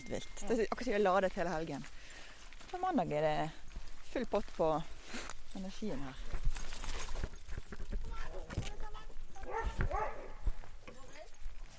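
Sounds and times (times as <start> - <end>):
busy noise: 0.0 - 11.7
speech: 0.1 - 2.0, 2.7 - 6.6
several dogs at a dog daycare in Bergen barking and yipping: 6.4 - 11.7.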